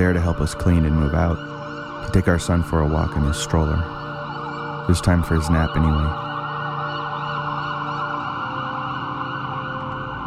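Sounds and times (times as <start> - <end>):
speech: 0.0 - 4.0, 4.9 - 6.2
ambulance siren wailing: 0.0 - 10.2.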